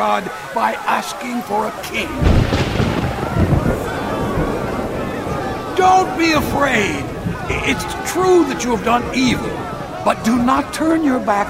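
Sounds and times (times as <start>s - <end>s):
speech: 0.0s - 2.7s, 5.8s - 11.4s
rolling thunder: 1.8s - 11.0s.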